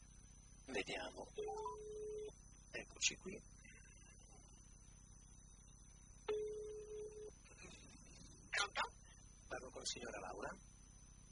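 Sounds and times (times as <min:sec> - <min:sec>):
quiet telephone line noise: 0:00.0 - 0:11.3
speech: 0:00.7 - 0:02.0, 0:02.7 - 0:03.6, 0:09.8 - 0:10.7
telephone ringback tone: 0:01.4 - 0:02.3, 0:06.3 - 0:07.4.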